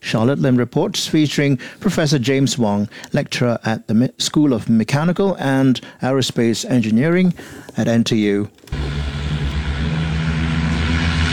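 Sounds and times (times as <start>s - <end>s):
speech: 0.1s - 9.2s
locally designed electric vertical takeoff and landing aircraft in flight whirring: 8.7s - 11.3s.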